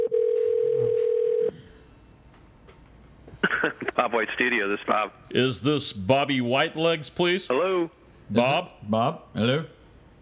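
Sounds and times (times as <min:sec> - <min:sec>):
telephone dial tone while placing a call: 0:00.0 - 0:01.5
speech: 0:03.6 - 0:09.8.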